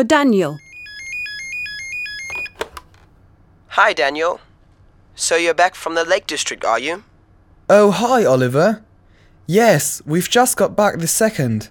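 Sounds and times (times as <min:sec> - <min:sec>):
speech: 0:00.0 - 0:00.6, 0:03.8 - 0:04.4, 0:05.2 - 0:07.1, 0:07.7 - 0:08.9, 0:09.5 - 0:11.6
electronic telephone ringtone: 0:00.6 - 0:02.6.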